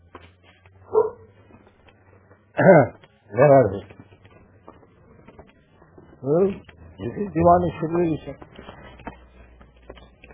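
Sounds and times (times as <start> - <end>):
faint scratchy noises: 0.0 - 10.3
low steady hum: 0.0 - 10.3
dog barking: 0.8 - 1.4
speech: 2.6 - 3.9, 6.2 - 8.5.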